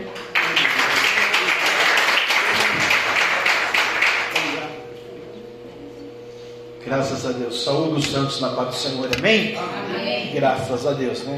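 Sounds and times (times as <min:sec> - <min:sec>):
congregation applauding: 0:00.0 - 0:04.8
speech: 0:06.9 - 0:11.3.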